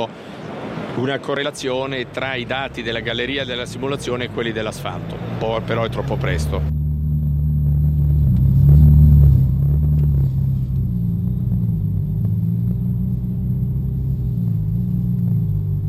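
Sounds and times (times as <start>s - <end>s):
speech: 0.0s - 0.2s, 1.0s - 6.7s
Ferrari engine roaring: 0.0s - 15.8s.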